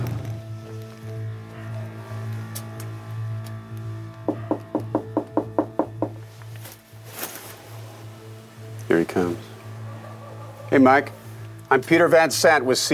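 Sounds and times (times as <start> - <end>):
reporter knocking on the front door of a lakeside house in Virginia: 4.3 - 6.2
speech: 8.9 - 9.5, 10.7 - 12.9.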